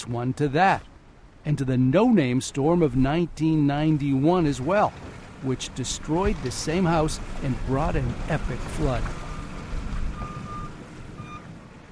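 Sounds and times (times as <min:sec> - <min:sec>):
speech: 0:00.0 - 0:09.2
heavy engine rumble of trucks and front-end loaders: 0:00.0 - 0:11.9
reversing beeps from trucks and front-end loaders clearing sand: 0:09.2 - 0:09.5, 0:10.2 - 0:11.5.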